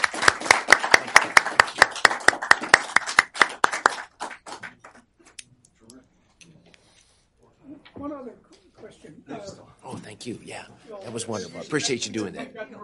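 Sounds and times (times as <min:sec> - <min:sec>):
audience applause: 0:00.0 - 0:05.0
speech: 0:10.2 - 0:12.8.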